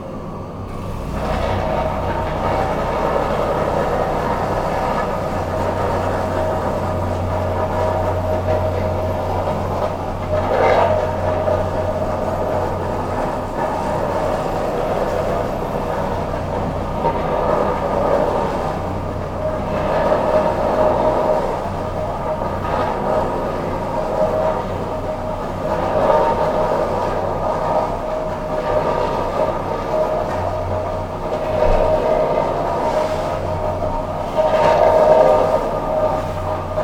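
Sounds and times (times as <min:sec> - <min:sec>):
street construction noise: 0:00.0 - 0:36.8.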